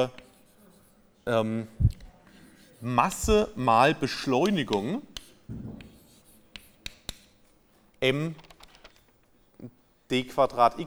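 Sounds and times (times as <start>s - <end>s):
speech: 0.0s - 0.2s, 1.3s - 2.0s, 2.8s - 5.9s, 8.0s - 8.4s, 9.6s - 10.8s
pen scratching writing a physics equation by hand: 0.0s - 1.2s, 1.9s - 7.7s.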